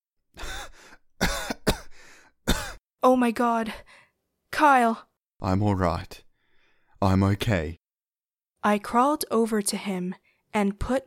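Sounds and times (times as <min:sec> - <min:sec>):
man who has fallen to his knees coughing: 0:00.4 - 0:02.8
speech: 0:03.0 - 0:04.0, 0:04.6 - 0:06.2, 0:07.0 - 0:07.8, 0:08.6 - 0:11.0.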